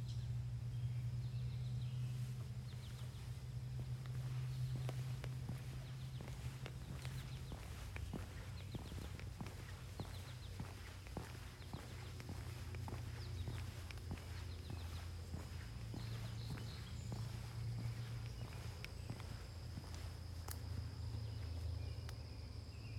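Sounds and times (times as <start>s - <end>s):
Acadian Flycatcher Empidonax virescens in Vermont: 0.1s - 22.1s.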